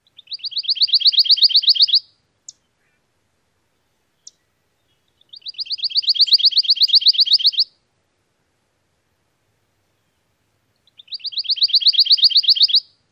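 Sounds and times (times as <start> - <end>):
Pine Warbler songs: 0.0 - 3.1, 3.7 - 7.8, 9.9 - 13.0.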